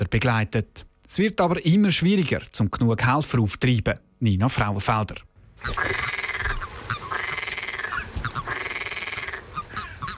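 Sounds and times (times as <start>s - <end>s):
speech: 0.0s - 6.2s
frogs croaking at the edge of a pond: 5.6s - 10.1s.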